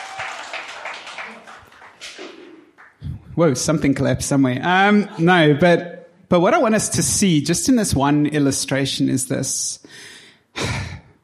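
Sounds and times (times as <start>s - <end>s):
audience applause: 0.0s - 3.0s
speech: 3.4s - 11.2s.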